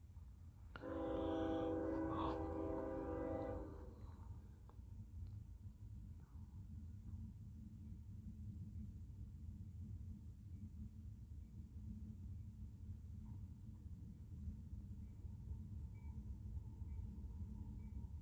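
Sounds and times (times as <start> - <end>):
deep rolling rumble of a passing train: 0.0 - 18.2
loud sustained train horn blaring: 0.8 - 4.3.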